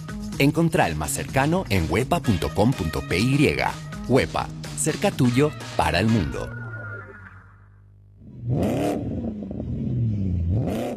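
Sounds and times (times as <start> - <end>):
speech: 0.4 - 6.6, 8.5 - 9.1
Changan car engine revving: 8.2 - 10.9.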